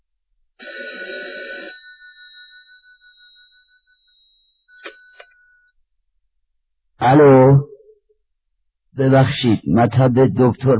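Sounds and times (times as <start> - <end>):
telephone ringing after a number is redialed: 0.6 - 5.7
speech: 7.0 - 7.7, 9.0 - 10.7.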